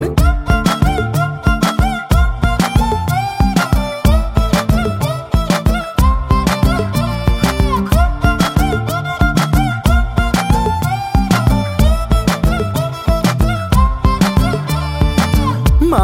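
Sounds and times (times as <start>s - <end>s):
violin music: 0.0s - 15.9s.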